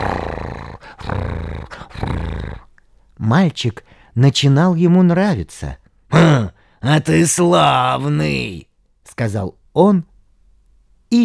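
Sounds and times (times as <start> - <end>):
tiger purring with pleasure: 0.0 - 2.8
speech: 3.2 - 10.1.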